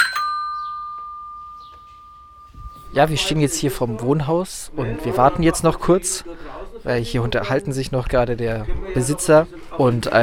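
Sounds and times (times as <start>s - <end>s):
two-tone doorbell chime at a residential house in Fürth: 0.0s - 3.6s
speech: 2.9s - 10.2s.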